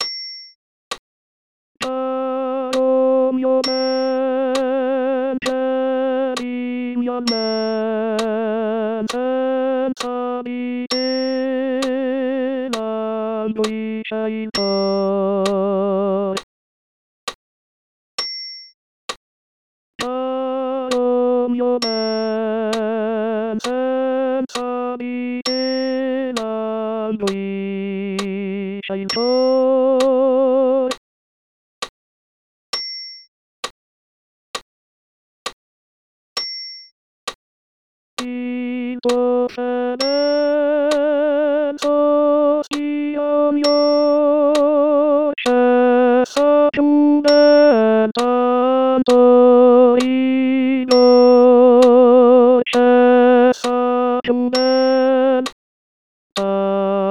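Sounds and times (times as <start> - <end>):
tenor singing: 1.8 - 16.5, 20.0 - 31.0, 38.2 - 55.6, 56.4 - 57.0.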